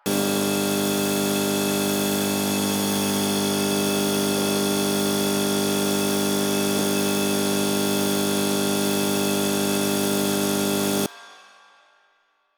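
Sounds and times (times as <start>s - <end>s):
light bulb hum in a cave: 0.0s - 11.1s.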